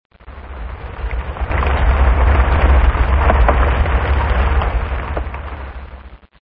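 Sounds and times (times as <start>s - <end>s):
rain: 0.1s - 6.4s.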